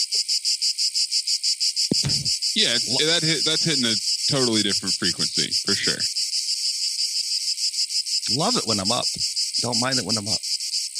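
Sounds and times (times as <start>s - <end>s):
cicada buzzing on a very hot day: 0.0s - 10.9s
brief low thump: 1.9s - 2.3s
laughter: 2.0s - 6.1s, 8.3s - 9.1s
speech: 2.6s - 6.2s, 8.3s - 10.5s.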